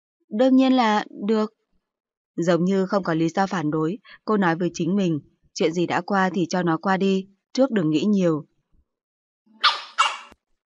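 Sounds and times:
speech: 0.3s - 1.6s, 2.4s - 8.5s
small dog barking: 9.6s - 10.4s.

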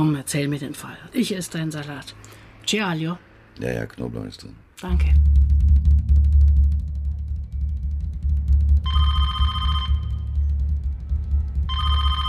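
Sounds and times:
speech: 0.0s - 5.5s
steady low hum: 4.9s - 12.2s
telephone bell ringing: 8.9s - 10.2s, 11.7s - 12.2s.

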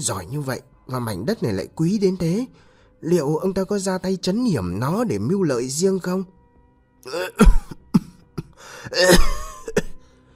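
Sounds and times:
speech: 0.0s - 6.4s, 7.0s - 7.7s, 8.6s - 9.4s
man clearing his throat: 7.1s - 10.0s
man coughing: 7.1s - 10.0s.

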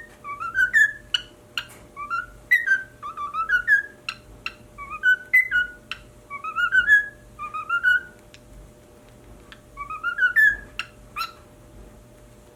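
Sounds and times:
pied cockatiel uttering wavy rising whistled phrases: 0.0s - 8.2s, 9.8s - 11.4s.

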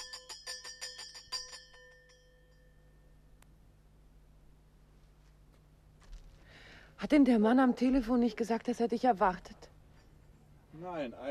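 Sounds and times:
doorbell ringing at a front door: 0.0s - 3.3s
faint steady hum: 0.0s - 11.3s
speech: 7.0s - 9.6s, 10.8s - 11.3s.

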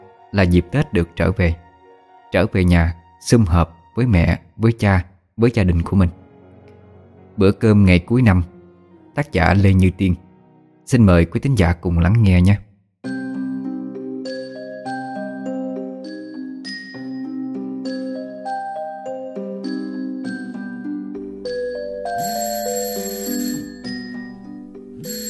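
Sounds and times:
speech: 0.3s - 1.6s, 2.3s - 6.2s, 7.4s - 8.5s, 9.2s - 10.2s, 10.9s - 12.6s
phone alarm ringing at the bedside with bell-like tones: 21.4s - 25.2s.

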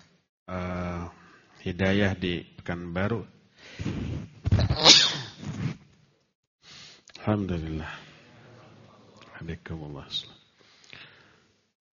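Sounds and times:
speech: 1.6s - 3.9s, 7.2s - 8.1s, 9.4s - 10.4s
human sneeze from chili sambal being cooked: 3.8s - 5.8s.

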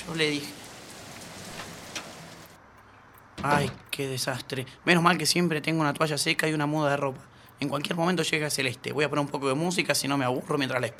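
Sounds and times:
speech: 0.0s - 0.6s, 3.4s - 10.9s
rain falling: 0.0s - 2.6s.

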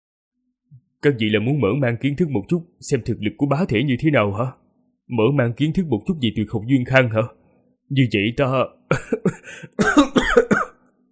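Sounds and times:
speech: 1.0s - 10.4s
violent dry coughing fit: 8.9s - 10.8s.

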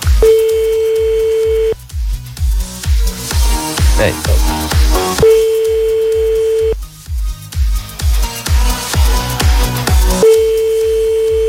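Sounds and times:
pulsing low music beat: 0.0s - 11.4s
telephone dialing tone during a radio prank call: 0.2s - 1.8s, 5.2s - 6.8s, 10.2s - 11.4s
speech: 4.0s - 4.3s.

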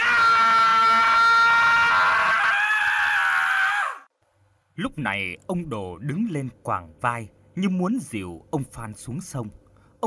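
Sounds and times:
man screaming in terror after a cold, bony hand grabs his: 0.0s - 4.1s
speech: 4.8s - 10.0s.

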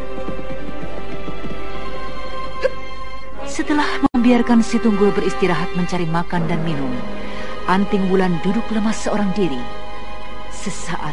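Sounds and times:
hooves of a ridden horse clip-clopping in a quiet forest: 0.0s - 2.4s
speech: 3.6s - 9.8s, 10.6s - 11.1s
sustained tonal background: 6.2s - 10.4s.

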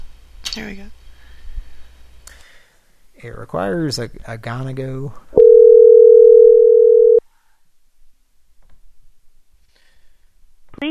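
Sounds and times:
speech: 0.5s - 1.0s, 3.2s - 5.4s
steady single-pitch telephone tone: 5.4s - 7.2s.

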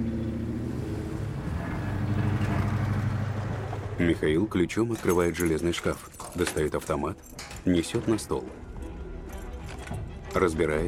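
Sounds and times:
car driving along a broken potholed road between shabby factory buildings: 0.0s - 4.5s
speech: 4.0s - 8.7s, 10.3s - 10.8s.

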